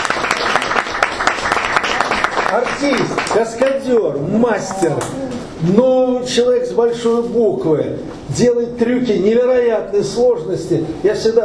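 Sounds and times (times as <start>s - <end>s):
audience applause welcoming a guest: 0.0s - 3.8s
speech: 2.5s - 11.4s.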